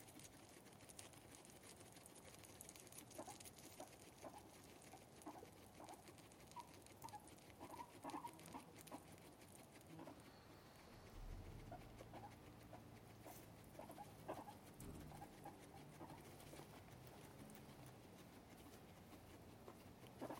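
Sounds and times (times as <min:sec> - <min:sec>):
guinea pigs chirping, squeaking and purring: 0:00.0 - 0:20.3
rustling: 0:00.0 - 0:20.3
low rumble: 0:10.4 - 0:13.0.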